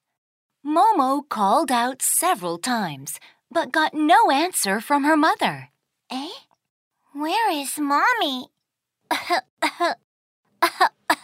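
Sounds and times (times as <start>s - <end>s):
speech: 0.7s - 6.4s, 7.2s - 10.0s, 10.6s - 11.2s
throaty coughs voiced as a rabbit with a cold: 9.1s - 10.0s.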